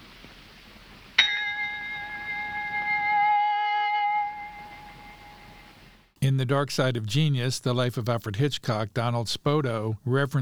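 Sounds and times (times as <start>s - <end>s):
shop door bell ringing like a knell: 1.2s - 5.7s
speech: 6.3s - 10.4s.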